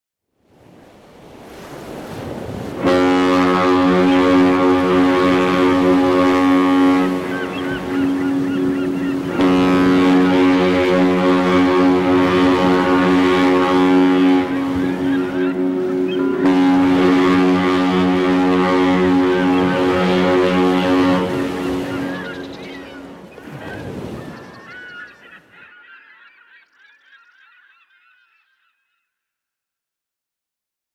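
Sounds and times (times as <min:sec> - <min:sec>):
ship horn: 0:01.8 - 0:24.4.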